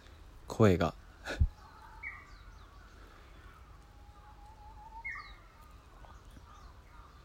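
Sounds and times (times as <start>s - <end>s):
Japanese bush warbler singing: 0.0s - 7.2s
soft outdoor hush: 0.0s - 7.2s
speech: 0.6s - 1.5s.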